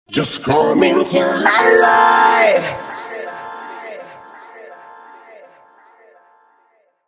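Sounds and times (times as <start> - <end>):
backing vocals harmony: 0.1 - 6.8.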